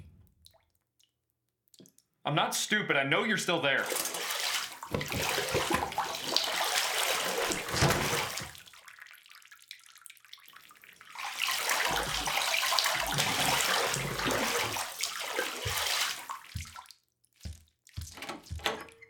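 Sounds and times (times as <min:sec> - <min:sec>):
speech: 0:02.3 - 0:04.2, 0:04.9 - 0:06.0
water pouring into a bathtub for a bath: 0:03.7 - 0:18.6.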